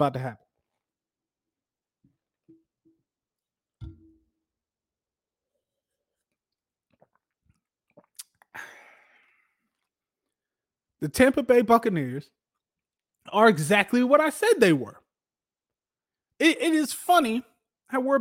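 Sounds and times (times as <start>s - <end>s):
speech: 0.0s - 0.4s, 11.0s - 12.4s, 13.2s - 15.0s, 16.4s - 18.1s
dull coffee mug thump: 3.8s - 4.2s.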